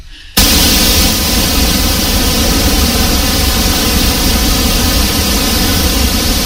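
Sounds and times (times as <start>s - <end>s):
pink noise test signal: 0.3s - 6.4s.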